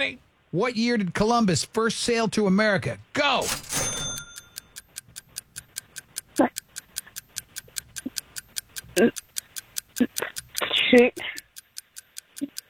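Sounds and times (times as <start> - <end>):
speech: 0.0 - 3.9, 9.0 - 9.2, 10.9 - 11.4
game-show countdown clock ticking: 3.7 - 12.6.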